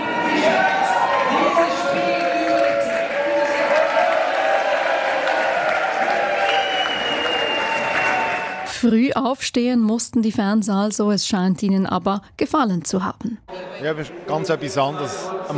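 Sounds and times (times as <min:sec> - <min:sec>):
football fans cheering at the final whistle in a football bar in Allschwil Switzerland: 0:00.0 - 0:08.7
football fans clapping: 0:00.0 - 0:08.8
speech: 0:08.8 - 0:15.5.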